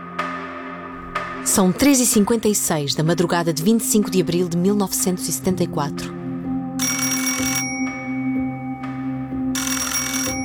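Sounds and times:
speech: 0:01.4 - 0:06.2
telephone bell ringing in a house: 0:06.8 - 0:08.7, 0:09.5 - 0:10.4.

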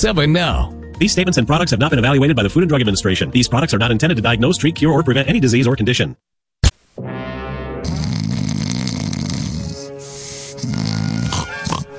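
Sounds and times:
speech: 0:00.0 - 0:06.3
loud congested snore-like mouth breathing: 0:07.8 - 0:11.9.

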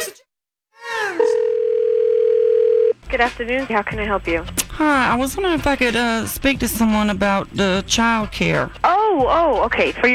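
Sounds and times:
telephone dial tone for a phone call: 0:01.4 - 0:03.0
speech: 0:03.1 - 0:10.1.

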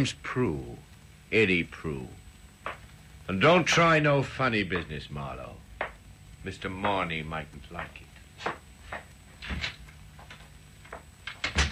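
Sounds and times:
speech: 0:00.0 - 0:05.6, 0:06.4 - 0:08.6
footsteps: 0:02.6 - 0:03.0, 0:06.6 - 0:11.1
door opening: 0:09.4 - 0:10.4, 0:11.2 - 0:11.6
door shutting with a firm thump: 0:09.4 - 0:11.6.

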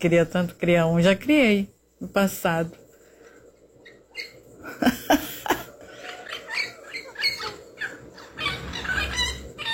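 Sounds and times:
speech: 0:00.0 - 0:02.8, 0:04.2 - 0:05.3
noisy outdoor background: 0:00.0 - 0:09.7
wild parrot squawking and chattering: 0:05.9 - 0:09.7.

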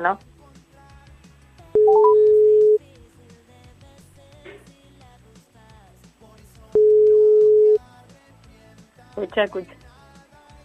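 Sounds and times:
soft music: 0:00.0 - 0:10.6
telephone ringback tone beeps: 0:01.8 - 0:02.8, 0:06.8 - 0:07.8.

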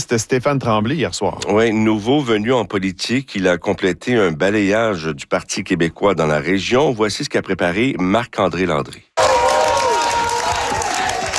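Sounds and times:
speech: 0:00.1 - 0:09.3
supporters cheering an election victory: 0:09.2 - 0:11.3.

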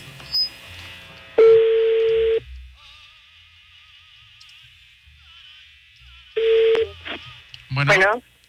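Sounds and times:
phone line ringback tone: 0:01.4 - 0:02.4, 0:06.4 - 0:06.9
speech: 0:07.8 - 0:08.3.

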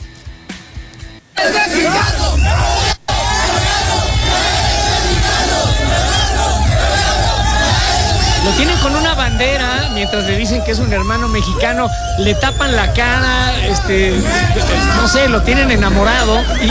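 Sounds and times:
large crowd of football fans chanting and shouting in celebration: 0:01.4 - 0:16.6
laughter: 0:01.4 - 0:16.6
speech: 0:08.5 - 0:16.6.

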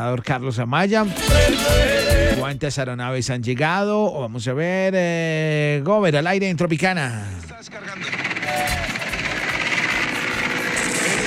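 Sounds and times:
speech: 0:00.0 - 0:08.0
helicopter rotor chopping over engine roar while fighting a fire: 0:07.4 - 0:11.2.

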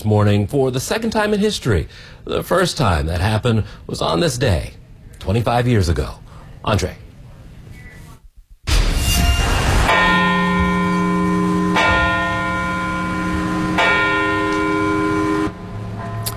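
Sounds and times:
speech: 0:00.0 - 0:07.0
church bells tolling at a commemoration in Parkville, Baltimore County, Maryland: 0:09.3 - 0:16.3.

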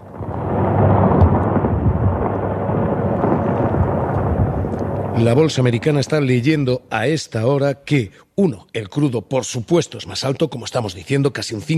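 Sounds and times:
war sounds with missiles: 0:00.0 - 0:06.2
speech: 0:05.2 - 0:11.7.

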